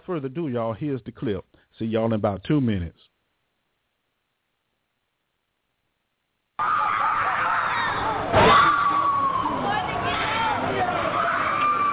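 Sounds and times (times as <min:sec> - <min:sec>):
speech: 0:00.1 - 0:03.1
several people screaming and wailing in distress: 0:06.6 - 0:11.9
murmuring crowd: 0:08.1 - 0:11.9.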